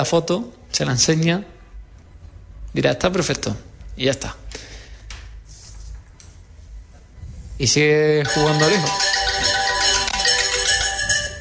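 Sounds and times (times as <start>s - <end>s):
speech: 0.0s - 1.5s, 2.8s - 4.7s, 7.6s - 9.1s
mobile phone ringtone playing a melodic tune: 8.2s - 11.3s.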